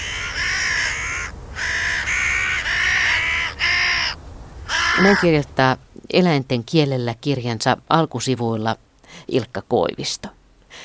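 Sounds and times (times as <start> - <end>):
crow cawing: 0.0 - 5.4
speech: 5.0 - 10.8.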